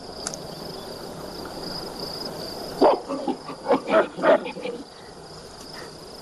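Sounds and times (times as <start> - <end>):
steady insect-like buzzing: 0.0 - 6.1
monkey roaring threateningly at a tapir: 2.8 - 4.9.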